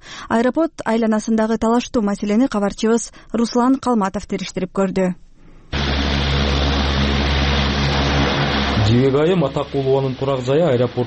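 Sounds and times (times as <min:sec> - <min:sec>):
speech: 0:00.3 - 0:05.2, 0:08.9 - 0:11.0
airplane landing at an airport bordering homes, engine roaring: 0:05.7 - 0:11.0.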